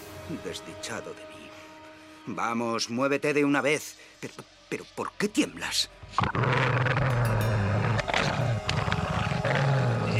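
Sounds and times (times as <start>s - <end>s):
speech: 0.3s - 1.4s, 2.3s - 7.0s
menacing animal growling: 6.2s - 10.1s.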